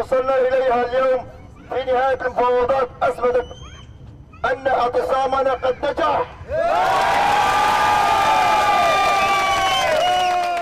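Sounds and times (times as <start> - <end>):
speech: 0.0 - 3.6, 4.4 - 7.4
large crowd of refugees cheering: 6.5 - 10.5.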